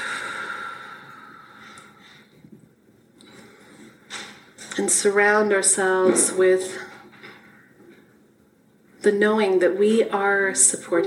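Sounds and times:
deep breath during a guided meditation: 0:00.0 - 0:02.5, 0:03.2 - 0:04.1
speech: 0:04.8 - 0:06.9, 0:09.0 - 0:11.0.

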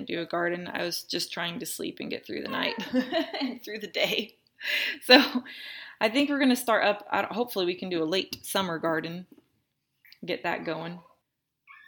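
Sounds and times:
speech: 0:00.0 - 0:09.4, 0:10.2 - 0:11.1
baby boy's sharp high-pitched squeaking cry: 0:02.5 - 0:02.9
laughter: 0:02.5 - 0:03.6.

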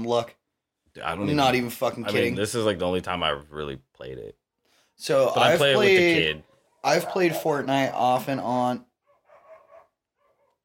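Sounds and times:
speech: 0:00.0 - 0:00.4, 0:01.0 - 0:04.4, 0:05.0 - 0:08.9
dog barking: 0:06.4 - 0:08.0, 0:09.0 - 0:10.6.

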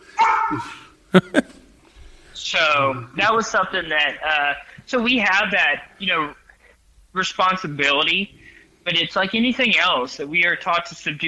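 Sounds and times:
dog barking at someone on a scooter: 0:00.2 - 0:00.8
speech: 0:00.5 - 0:01.5, 0:02.6 - 0:06.4, 0:07.1 - 0:11.2.

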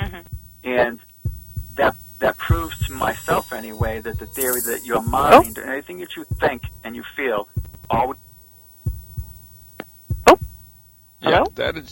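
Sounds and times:
low heartbeat thumps: 0:00.0 - 0:11.8
speech: 0:02.6 - 0:08.2, 0:11.3 - 0:11.9.

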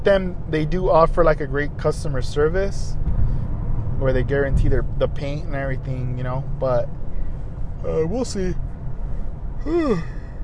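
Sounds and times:
speech: 0:00.0 - 0:03.2, 0:04.0 - 0:07.0, 0:07.8 - 0:08.6, 0:09.6 - 0:10.4
low steady rumble: 0:00.0 - 0:10.4
person yawning: 0:09.6 - 0:10.4.

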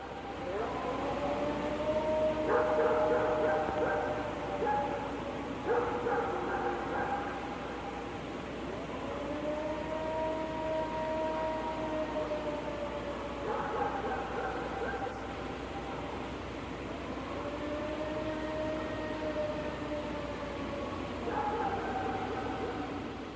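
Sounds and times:
unexplained wavering wailing howl: 0:00.0 - 0:08.1, 0:08.7 - 0:16.2, 0:16.8 - 0:23.2
steady hiss: 0:00.0 - 0:23.3.

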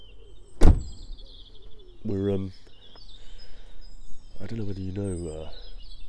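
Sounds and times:
car door shutting: 0:00.6 - 0:01.2
speech: 0:02.0 - 0:02.7, 0:04.4 - 0:05.7.

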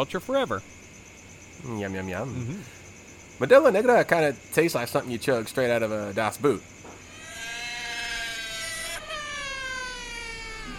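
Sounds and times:
speech: 0:00.0 - 0:00.8, 0:01.6 - 0:02.8, 0:03.4 - 0:06.8
baby caterwauling at night, echoing: 0:07.1 - 0:10.7.

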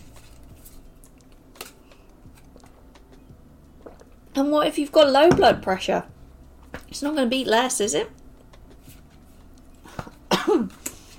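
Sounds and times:
speech: 0:04.4 - 0:06.1, 0:06.9 - 0:08.2
person coughing after swallowing air: 0:10.0 - 0:10.8
person clearing throat with a rough rasp: 0:10.3 - 0:10.8.

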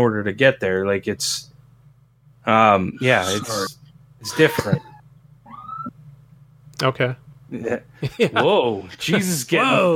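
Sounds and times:
speech: 0:00.0 - 0:01.5, 0:02.4 - 0:04.9, 0:06.8 - 0:09.9
steady low hum: 0:00.0 - 0:09.9
police siren wail passing outside: 0:03.2 - 0:05.9
laughter: 0:04.3 - 0:05.0, 0:08.0 - 0:08.5.

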